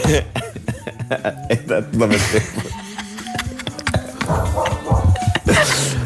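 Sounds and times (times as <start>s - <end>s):
laughter: 0.0s - 6.0s
speech: 0.1s - 0.4s, 1.1s - 2.6s, 5.6s - 6.0s
dog barking: 4.2s - 5.3s.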